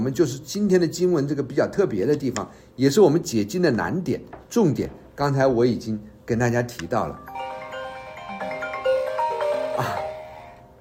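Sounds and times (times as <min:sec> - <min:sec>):
speech: 0:00.0 - 0:07.4
phone melodic electronic ringtone from incoming spam call: 0:07.2 - 0:10.7.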